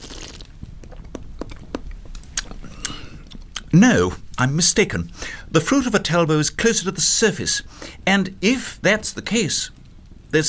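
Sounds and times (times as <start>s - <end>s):
sip of wine: 0.0s - 1.1s
wet mouth clicks and smacks savouring wine: 0.0s - 3.7s
speech: 3.7s - 10.4s.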